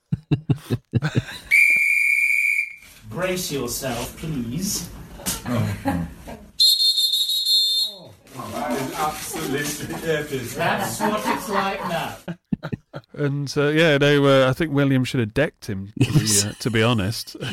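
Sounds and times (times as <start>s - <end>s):
laughter: 0.0s - 1.6s, 5.1s - 6.6s, 8.4s - 13.4s, 16.0s - 17.5s
speech: 0.3s - 1.3s, 3.2s - 6.4s, 9.0s - 12.4s, 13.2s - 17.5s
ship steam whistle blast: 1.5s - 2.8s, 6.6s - 8.0s.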